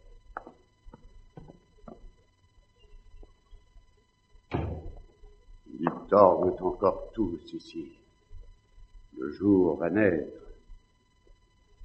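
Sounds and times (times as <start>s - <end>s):
wooden window thumping and rattling open: 4.5s - 5.0s
speech: 6.1s - 8.0s, 9.2s - 10.4s.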